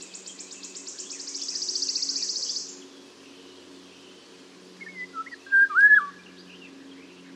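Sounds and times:
Eurasian golden oriole Oriolus oriolus whistling a fluted phrase: 0:05.0 - 0:06.2.

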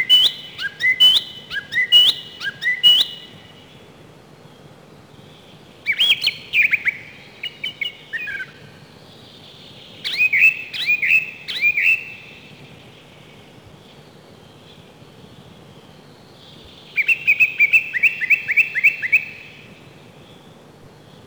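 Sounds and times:
song thrush singing: 0:00.0 - 0:21.2.

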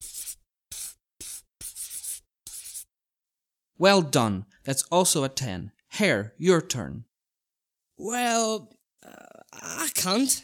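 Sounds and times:
pencil scratching and scribbling across paper: 0:00.0 - 0:03.0
speech: 0:03.8 - 0:07.1, 0:08.0 - 0:10.4.

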